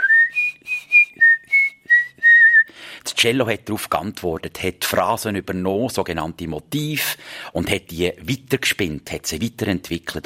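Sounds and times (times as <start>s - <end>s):
whistled bird-like musical motif: 0.0s - 2.7s
speech: 3.2s - 10.2s.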